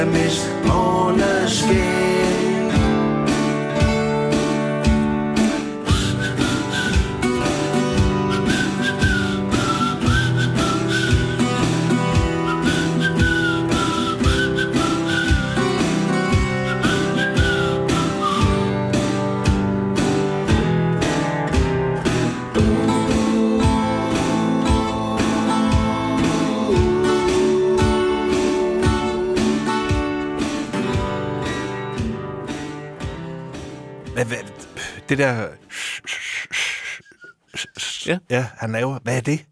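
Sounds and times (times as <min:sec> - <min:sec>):
full band arrangement in a song: 0:00.0 - 0:32.5
breathy half-formed whistled melody in a song: 0:05.8 - 0:19.4, 0:22.5 - 0:30.8, 0:35.7 - 0:38.1
speech: 0:35.2 - 0:35.6, 0:38.1 - 0:39.5.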